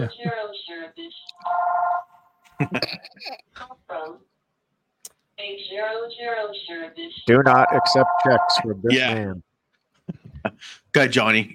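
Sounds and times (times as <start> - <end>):
speech: 0.0 - 1.8, 2.6 - 3.7, 5.4 - 9.5, 10.6 - 11.5
electronic phone ring: 1.4 - 2.2, 7.3 - 8.7.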